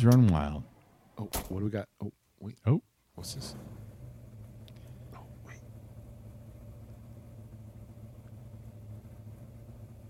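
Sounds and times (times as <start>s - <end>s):
speech: 0.0s - 3.8s
muscle car engine idling with a deep throaty rumble: 3.2s - 10.0s.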